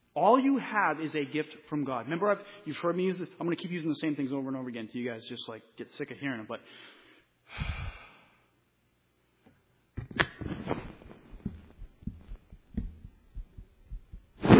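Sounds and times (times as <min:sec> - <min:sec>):
speech: 0:00.2 - 0:07.8
heartbeat: 0:10.4 - 0:14.5.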